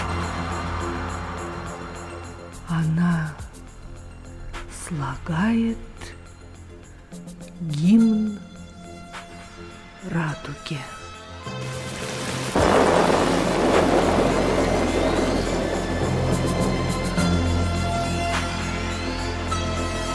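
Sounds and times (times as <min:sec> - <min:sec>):
steady heavy rain: 0:00.0 - 0:02.8, 0:11.5 - 0:20.0
speech: 0:02.7 - 0:03.4, 0:04.9 - 0:06.2, 0:07.6 - 0:08.4, 0:10.0 - 0:11.0
loud thunderclap: 0:11.8 - 0:18.8.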